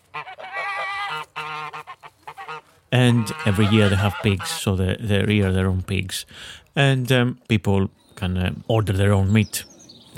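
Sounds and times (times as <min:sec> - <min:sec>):
geese honking on a working farm in the city: 0:00.0 - 0:04.7
speech: 0:02.9 - 0:10.1.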